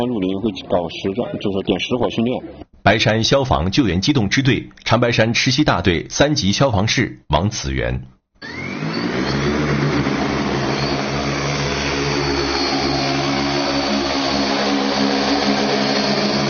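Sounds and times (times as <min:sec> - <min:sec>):
speech: 0:00.0 - 0:08.7
heavy-lift firefighting and cargo drone engine and rotors flying: 0:08.4 - 0:16.4
rising whining tone: 0:08.4 - 0:16.4.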